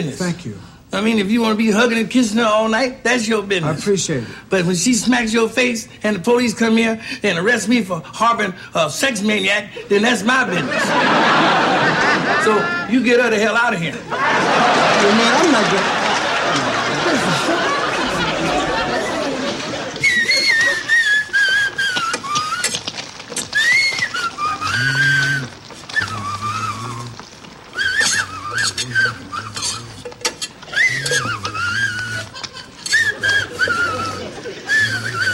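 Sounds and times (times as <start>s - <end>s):
speech: 0.0s - 16.0s
laughter: 10.4s - 13.0s, 14.0s - 22.8s, 24.1s - 27.2s, 27.8s - 35.3s
person whistling a film theme tune: 20.0s - 22.8s, 23.6s - 27.1s, 27.8s - 29.9s, 30.7s - 35.3s.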